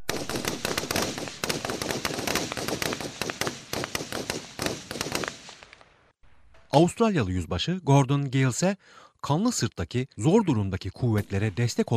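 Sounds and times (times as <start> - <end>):
gunfire in battle during the 1915 Gallipoli landing: 0.0 - 6.0
speech: 6.8 - 11.9.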